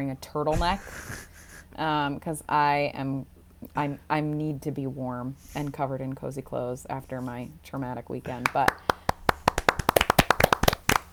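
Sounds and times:
speech: 0:00.0 - 0:08.9
hand clapping as applause: 0:08.3 - 0:11.1.

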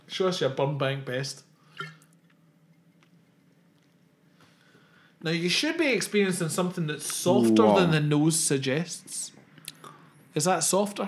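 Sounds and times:
quiet hum: 0:00.0 - 0:11.0
speech: 0:00.1 - 0:01.9, 0:05.2 - 0:09.4, 0:10.4 - 0:11.0
liquid slosh and gulp from a bottle: 0:01.8 - 0:02.1
faint wet clicks: 0:01.8 - 0:04.2.

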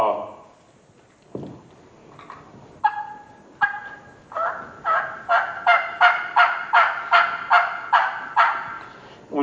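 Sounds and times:
turkey call yelping: 0:02.8 - 0:08.8.

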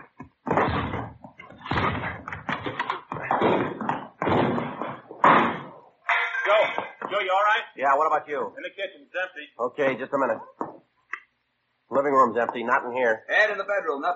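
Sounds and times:
door battered and forced open with heavy thuds and crashes: 0:00.4 - 0:05.8
speech: 0:07.3 - 0:10.6, 0:11.9 - 0:14.1.

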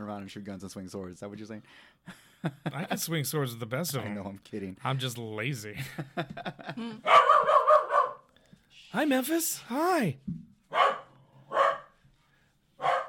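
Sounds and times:
speech: 0:00.2 - 0:07.6, 0:08.9 - 0:10.8
laughter: 0:05.8 - 0:07.0
corgi barking: 0:07.0 - 0:08.3, 0:10.7 - 0:12.0, 0:12.8 - 0:13.0.

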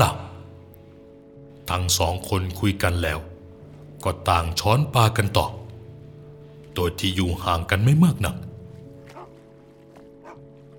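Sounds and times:
speech: 0:01.7 - 0:03.3, 0:04.0 - 0:05.6, 0:06.8 - 0:08.4
dog barking: 0:09.1 - 0:09.3, 0:10.2 - 0:10.4.

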